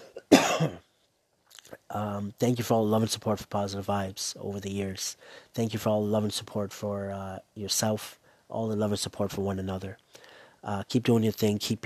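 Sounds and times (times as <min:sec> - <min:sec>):
person coughing: 0:00.0 - 0:00.9
speech: 0:00.6 - 0:00.8, 0:02.0 - 0:10.0, 0:10.6 - 0:11.8.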